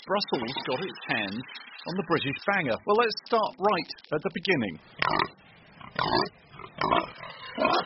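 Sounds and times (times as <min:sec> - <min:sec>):
speech: 0:00.1 - 0:07.8
pigs grunting and oinking on a British farm: 0:05.0 - 0:07.8.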